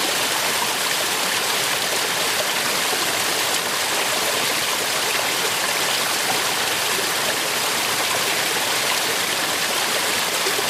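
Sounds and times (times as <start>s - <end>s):
stream swollen with snowmelt rushing in late winter in the Mangfallgebirge: 0.0s - 10.6s.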